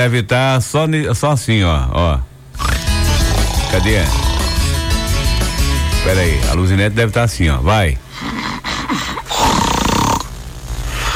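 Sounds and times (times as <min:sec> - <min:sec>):
speech: 0:00.0 - 0:02.9, 0:03.7 - 0:04.3, 0:06.0 - 0:08.0
voice imitating snoring: 0:02.6 - 0:05.0, 0:08.1 - 0:11.1.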